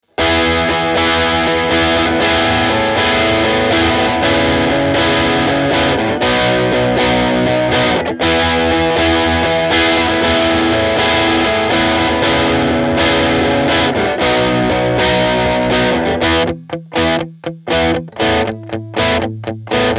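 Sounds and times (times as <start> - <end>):
Blackstar HT amplifier distortion: 0.0 - 19.9.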